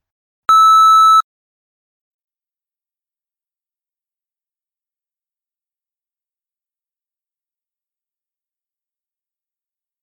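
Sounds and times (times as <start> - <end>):
electronic beep tone in an oral exam recording check: 0.5 - 1.2.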